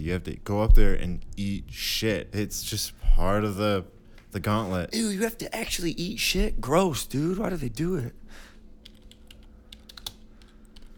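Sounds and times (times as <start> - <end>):
speech: 0.0 - 8.5
low steady hum: 0.0 - 10.9
typing on a computer keyboard: 8.8 - 10.9.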